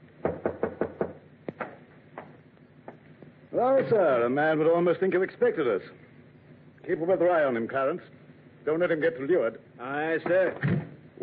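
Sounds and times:
sharp knocks on a wooden door: 0.2s - 1.2s
speech: 3.6s - 6.0s, 6.9s - 11.2s.

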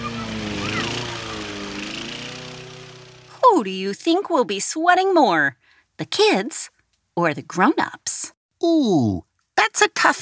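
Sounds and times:
lawn mower motor running: 0.0s - 4.6s
speech: 3.5s - 10.2s.

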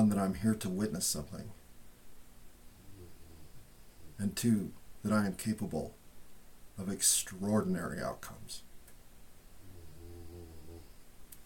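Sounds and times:
speech: 0.2s - 1.6s, 4.2s - 6.0s, 6.8s - 8.7s
female dog snoring softly: 2.8s - 4.2s, 9.6s - 11.0s.

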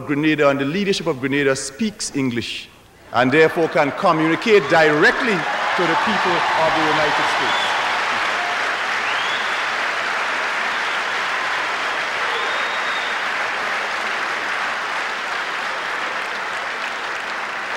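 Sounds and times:
speech: 0.0s - 7.7s
sustained applause from a large audience: 3.6s - 17.7s
faint whistles from the audience: 9.0s - 9.6s, 12.2s - 13.3s.

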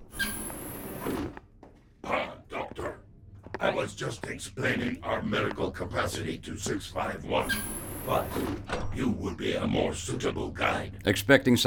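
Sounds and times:
door sliding open with an airy hiss: 0.0s - 1.4s, 7.4s - 8.8s
speech: 3.8s - 11.6s.

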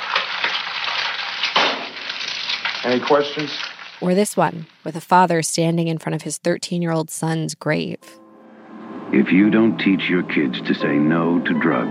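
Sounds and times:
egg frying in a frying pan: 0.0s - 4.9s
speech: 2.8s - 8.2s, 9.1s - 11.8s.

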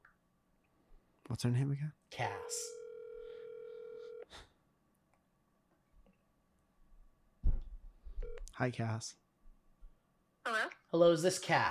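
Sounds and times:
speech: 1.3s - 2.8s, 8.6s - 9.2s, 10.9s - 11.6s
phone call ringing tone: 2.7s - 4.3s, 8.2s - 8.5s
soft thump: 7.4s - 7.8s.

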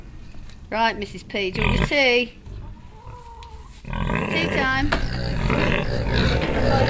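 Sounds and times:
speech: 0.7s - 2.4s, 4.4s - 6.8s
Gloucester Old Spot pig grunting and snuffling: 3.0s - 6.8s.

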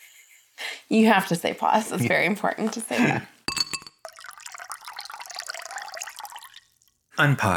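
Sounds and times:
speech: 0.9s - 3.4s, 7.2s - 7.5s
spicy cucumber and jalapeno margarita poured into a glass: 3.7s - 7.0s.

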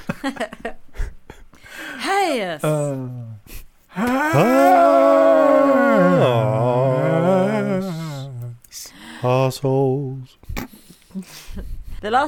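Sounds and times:
speech: 0.2s - 0.7s, 2.0s - 3.3s, 4.0s - 5.0s, 9.5s - 10.2s, 12.0s - 12.2s
person imitating a dog howling: 4.0s - 8.5s.

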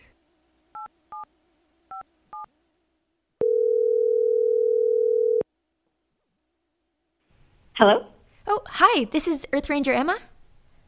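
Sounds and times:
long steady telephone ringing tone: 3.4s - 5.4s
speech: 7.8s - 10.3s.

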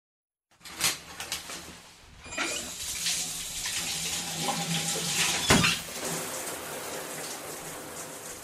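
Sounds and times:
shower water spattering on a hard surface: 2.5s - 8.4s.

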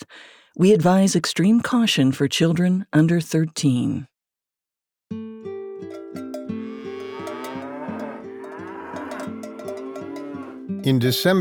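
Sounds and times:
speech: 0.6s - 4.1s, 10.8s - 11.3s
herd of cows lowing in a pasture: 6.2s - 10.8s.

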